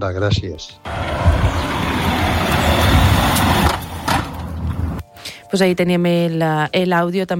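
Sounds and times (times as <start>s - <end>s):
speech: 0.0s - 1.7s, 5.5s - 7.3s
car passing with loud rumbling roar: 0.8s - 5.0s.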